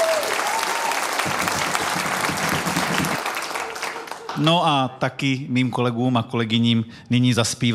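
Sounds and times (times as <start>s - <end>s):
crowd applauding with dense sustained clapping: 0.0s - 4.7s
speech: 4.4s - 7.7s.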